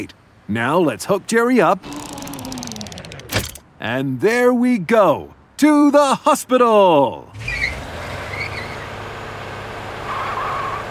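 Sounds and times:
speech: 0:00.0 - 0:02.0, 0:03.8 - 0:07.4
downtown city traffic rumble: 0:00.0 - 0:10.8
tires or brakes squealing: 0:07.4 - 0:09.0, 0:10.0 - 0:10.8.

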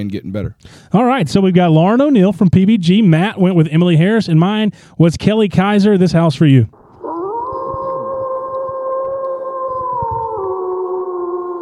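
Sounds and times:
speech: 0:00.0 - 0:06.8
long sustained howl: 0:06.8 - 0:11.6.

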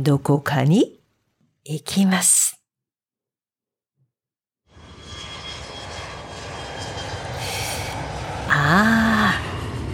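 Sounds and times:
speech: 0:00.0 - 0:01.0, 0:01.6 - 0:02.5
aircraft engine roar at an airport: 0:04.7 - 0:09.9.

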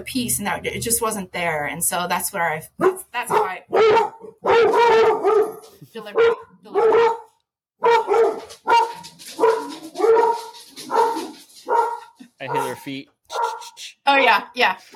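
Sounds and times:
speech: 0:00.0 - 0:07.2, 0:12.4 - 0:13.4, 0:14.1 - 0:14.9
dog barking: 0:02.8 - 0:13.7.

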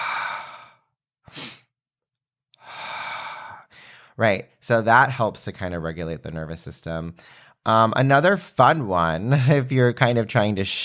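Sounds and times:
quick sharp sniff in through the nose: 0:01.3 - 0:01.7
speech: 0:04.2 - 0:10.8.

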